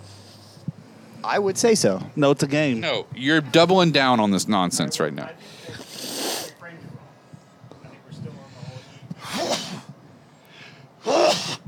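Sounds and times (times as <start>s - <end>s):
speech: 1.2s - 5.8s
person sneezing: 9.2s - 9.8s, 11.0s - 11.6s.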